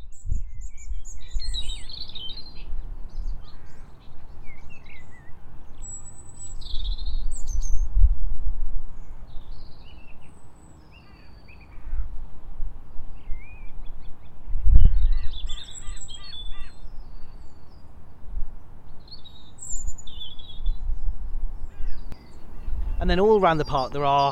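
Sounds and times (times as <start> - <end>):
blackbirds calling in parkland trees: 0.0 - 7.9, 8.9 - 24.3
magpies calling in parkland trees: 3.4 - 4.0, 11.0 - 12.1, 15.0 - 16.8, 21.6 - 24.3
speech: 23.1 - 24.3.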